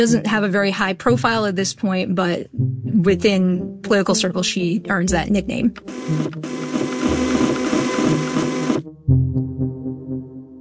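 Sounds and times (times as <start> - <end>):
speech: 0.0 - 7.2
printer whirring and rattling: 5.9 - 8.8.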